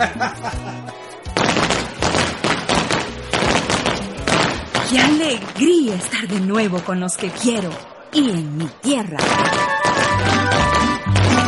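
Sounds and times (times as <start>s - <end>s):
laughter: 0.0s - 1.0s
speech: 0.0s - 1.0s, 4.9s - 9.7s
long string of firecrackers exploding: 1.3s - 5.6s, 9.2s - 11.4s.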